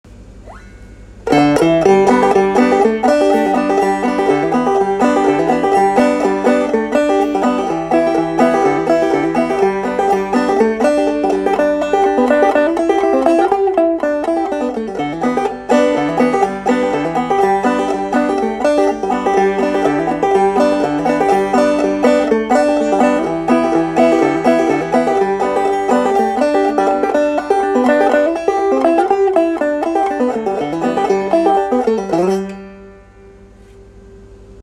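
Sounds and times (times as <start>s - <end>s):
Tubaphone banjo melody: 1.2s - 33.1s.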